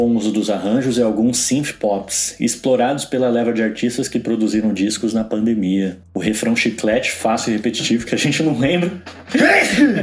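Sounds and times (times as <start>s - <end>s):
speech: 0.0s - 10.0s
single loud sneeze: 9.3s - 10.0s.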